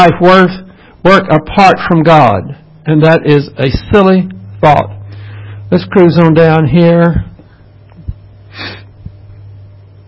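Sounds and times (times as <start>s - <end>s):
speech: 0.0s - 5.0s, 5.7s - 7.3s, 8.6s - 8.8s
low hum: 0.0s - 10.0s
nasal sniff: 8.5s - 9.0s.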